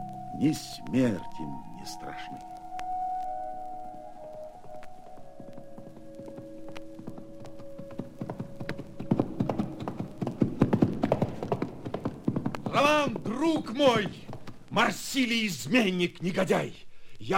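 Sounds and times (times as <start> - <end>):
low sustained tonal drone: 0.0 - 10.8
speech: 0.4 - 2.6, 13.4 - 14.2, 14.8 - 17.3
horse hooves clip-clopping up a high mountain slope: 3.8 - 15.5.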